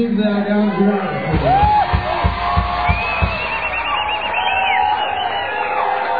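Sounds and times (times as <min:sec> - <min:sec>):
speech: 0:00.0 - 0:01.6
large concert crowd screaming and cheering: 0:00.0 - 0:06.1
low thumps: 0:01.2 - 0:04.3.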